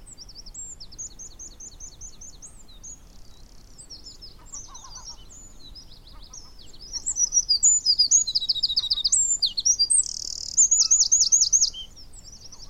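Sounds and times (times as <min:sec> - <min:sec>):
Eurasian wren twittering and trilling: 0:00.0 - 0:12.6.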